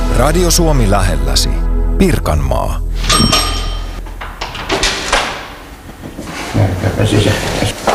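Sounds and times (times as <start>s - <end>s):
speech: 0.2s - 3.5s, 6.9s - 7.9s
front door of a home in an apartment building opening: 3.0s - 6.8s.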